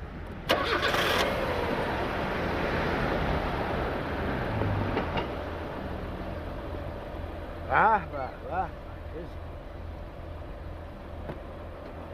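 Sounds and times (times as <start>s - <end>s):
car engine idling: 0.0s - 2.7s, 5.2s - 12.1s
car engine starting: 0.0s - 7.5s.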